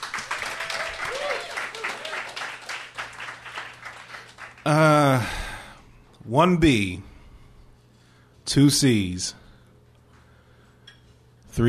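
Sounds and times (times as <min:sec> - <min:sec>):
room full of people applauding: 0:00.0 - 0:05.2
speech: 0:06.3 - 0:07.1, 0:08.5 - 0:09.4.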